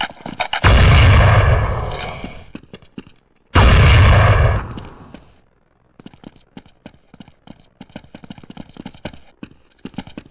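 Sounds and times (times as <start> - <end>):
bazooka firing in a video game: 0.6 - 2.5, 3.6 - 5.1.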